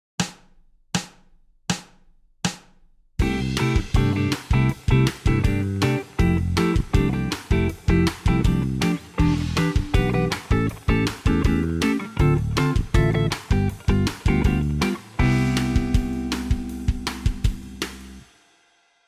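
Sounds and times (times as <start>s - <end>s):
jazz backing music: 3.2s - 18.2s.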